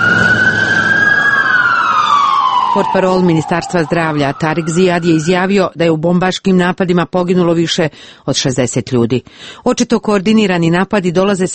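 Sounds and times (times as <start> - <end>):
ambulance sirens wailing in a Baghdad street: 0.0 - 5.7
speech: 2.8 - 11.5.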